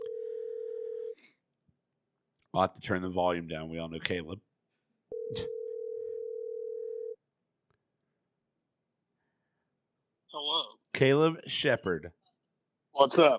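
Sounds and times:
outgoing phone call ringback tone: 0:00.0 - 0:01.2, 0:05.1 - 0:07.2
speech: 0:02.6 - 0:04.5, 0:05.3 - 0:05.6, 0:11.0 - 0:12.2, 0:13.0 - 0:13.3.

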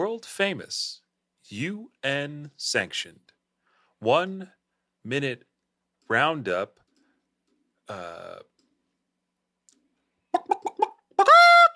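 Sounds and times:
speech: 0:00.2 - 0:03.3, 0:04.0 - 0:05.5, 0:06.1 - 0:06.8, 0:07.9 - 0:08.5
chicken squawking and clucking: 0:10.3 - 0:11.7.

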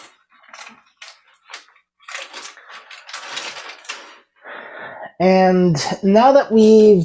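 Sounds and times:
paper backing being peeled back from a round tub: 0:00.0 - 0:04.3
speech: 0:05.2 - 0:07.0.

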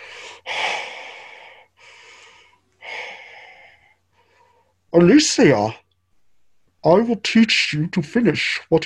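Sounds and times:
heavy raspy breathing over a phone call: 0:00.0 - 0:04.8
speech: 0:04.9 - 0:05.8, 0:06.8 - 0:08.8.

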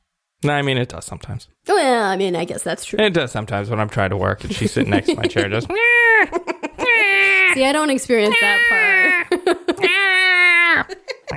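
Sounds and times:
speech: 0:00.4 - 0:06.4, 0:07.6 - 0:10.0
laughter: 0:04.4 - 0:07.4, 0:08.2 - 0:11.3
old cat yowling: 0:05.7 - 0:07.6, 0:08.3 - 0:09.2, 0:09.8 - 0:11.3.

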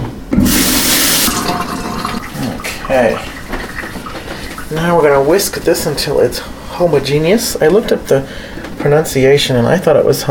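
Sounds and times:
tap water running as hands are rinsed: 0:00.3 - 0:05.7
speech: 0:02.9 - 0:03.3, 0:04.7 - 0:10.2.

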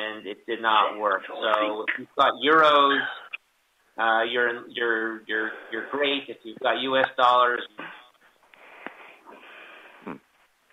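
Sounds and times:
speech: 0:00.2 - 0:03.2, 0:04.0 - 0:08.0
heavy breathing over a phone line: 0:08.2 - 0:10.0.

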